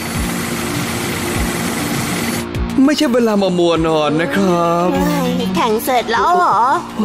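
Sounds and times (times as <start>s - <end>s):
Beyblade spinning tops whirring while battling: 0.0s - 2.6s
speech: 2.9s - 7.0s.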